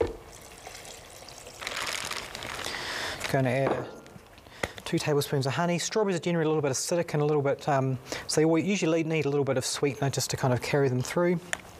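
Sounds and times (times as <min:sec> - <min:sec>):
water poured into a blender jar: 0:00.3 - 0:02.5
speech: 0:03.3 - 0:04.0, 0:04.9 - 0:11.7.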